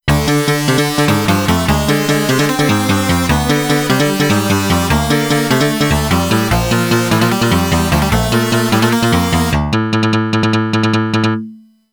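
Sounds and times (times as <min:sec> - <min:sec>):
crying strings playing: 0:00.1 - 0:11.3.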